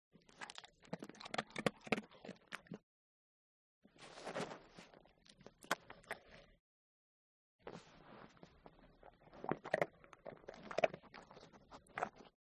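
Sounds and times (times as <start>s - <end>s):
Staffordshire dog eating: 0.2s - 2.8s, 8.1s - 12.3s.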